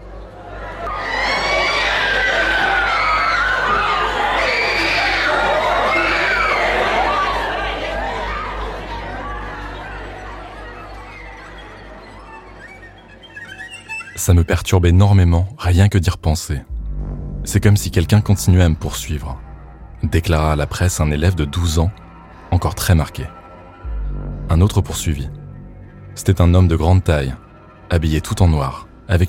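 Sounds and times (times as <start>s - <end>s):
crowd of young voices shouting and screaming: 0.2s - 12.7s
speech: 14.3s - 16.7s, 17.5s - 19.4s, 20.0s - 23.4s, 24.5s - 25.4s, 26.2s - 29.2s.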